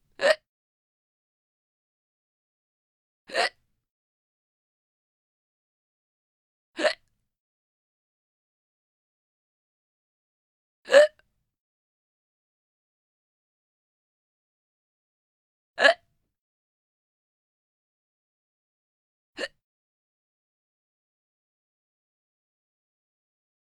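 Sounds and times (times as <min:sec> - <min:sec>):
girl hiccuping: 0:00.2 - 0:00.4, 0:03.3 - 0:03.6, 0:06.8 - 0:07.0, 0:10.9 - 0:11.2, 0:15.8 - 0:16.0.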